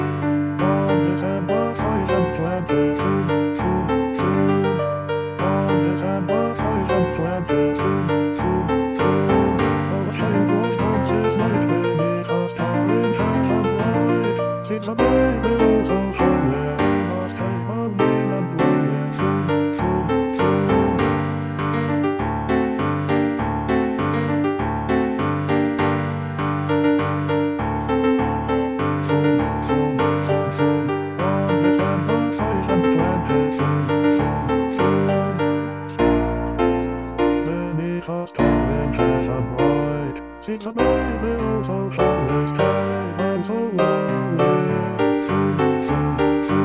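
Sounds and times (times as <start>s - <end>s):
bass voice of an SATB choir singing: 0.2s - 25.8s, 26.7s - 46.6s.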